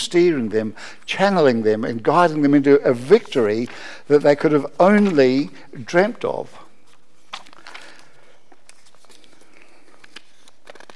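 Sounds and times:
speech: 0:00.1 - 0:06.6
two bits of paper rustling and crinkling: 0:06.8 - 0:10.9.

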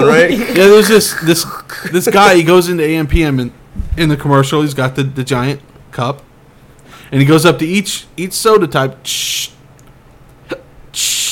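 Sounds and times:
speech: 0:00.2 - 0:06.3, 0:07.1 - 0:09.6, 0:10.5 - 0:11.3
voice imitating a hiccup: 0:10.4 - 0:10.7.

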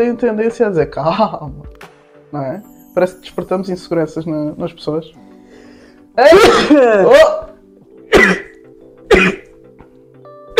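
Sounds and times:
speech: 0:00.0 - 0:05.3, 0:06.2 - 0:07.4
person sneezing with a voiced wind-up: 0:06.2 - 0:09.5.

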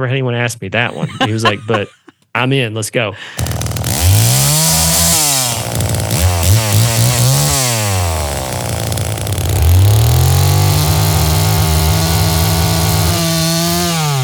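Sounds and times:
speech: 0:00.0 - 0:03.6
laughter: 0:00.9 - 0:02.2
chainsaw engine revving: 0:03.2 - 0:14.2.

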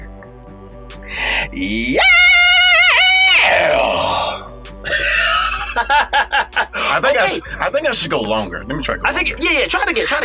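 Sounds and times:
speech: 0:00.9 - 0:02.3, 0:05.8 - 0:10.2
breathy vocal noises: 0:01.0 - 0:02.1, 0:03.3 - 0:05.8, 0:06.7 - 0:07.8
loud sustained rock-style vocal scream: 0:01.2 - 0:05.3
laughter: 0:04.8 - 0:08.6.

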